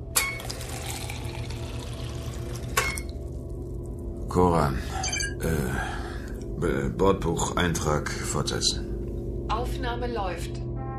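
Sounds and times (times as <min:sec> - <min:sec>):
water ration poured into a glass: 0:00.2 - 0:03.9
speech: 0:04.4 - 0:06.0, 0:06.6 - 0:08.9, 0:09.7 - 0:10.6
glass clinks: 0:05.0 - 0:05.4.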